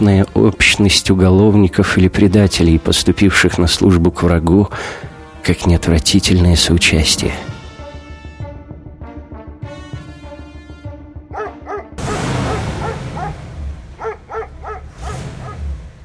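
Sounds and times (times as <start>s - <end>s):
speech: 0.0s - 7.5s
dogs barking: 11.3s - 15.8s.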